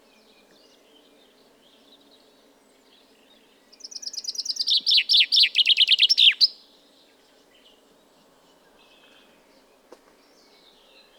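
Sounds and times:
common chaffinch Fringilla coelebs singing: 3.8s - 6.6s.

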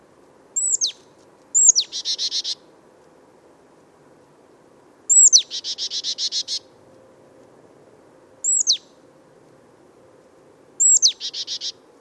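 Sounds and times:
Marsh Tit Poecile palustris calls: 0.6s - 1.0s, 1.6s - 2.6s, 5.1s - 6.6s, 8.4s - 8.8s, 10.8s - 11.8s.

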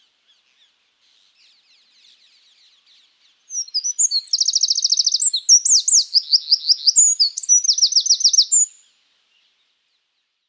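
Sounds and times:
Eurasian wren Troglodytes troglodytes singing rapid trills: 3.6s - 8.8s.

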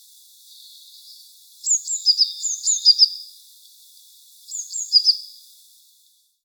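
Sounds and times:
faint hiss: 0.0s - 6.4s
Eurasian blue tit Cyanistes caeruleus giving thin whistled notes and buzzy trills: 0.5s - 3.2s, 4.5s - 5.4s.

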